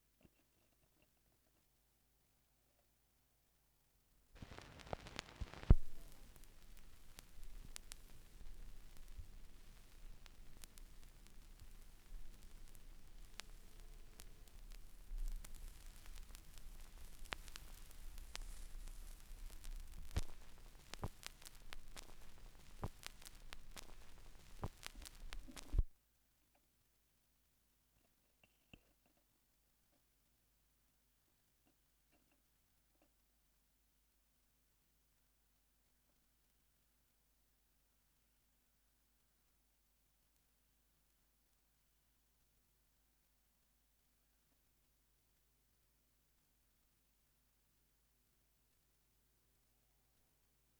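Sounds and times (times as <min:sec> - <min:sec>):
vinyl record noise: 0:04.4 - 0:26.0.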